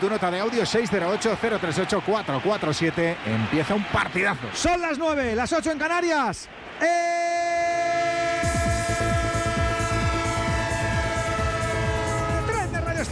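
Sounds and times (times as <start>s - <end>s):
speech: 0.0s - 7.3s
train horn played as a sound effect: 8.0s - 12.8s.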